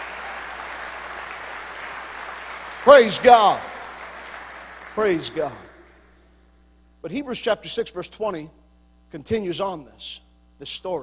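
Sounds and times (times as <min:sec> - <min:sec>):
church congregation clapping hands in praise: 0:00.0 - 0:06.1
speech: 0:02.8 - 0:03.7, 0:05.0 - 0:05.7, 0:07.0 - 0:11.0.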